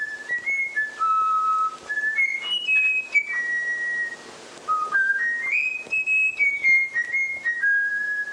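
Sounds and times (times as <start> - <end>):
Eurasian bullfinch whistling a taught flute melody: 0.0 - 8.3.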